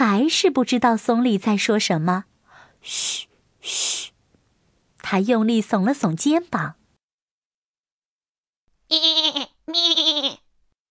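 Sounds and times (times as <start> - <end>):
speech: 0.2 - 4.1, 5.1 - 6.8, 8.9 - 9.2
thin goat bleating: 8.9 - 10.5.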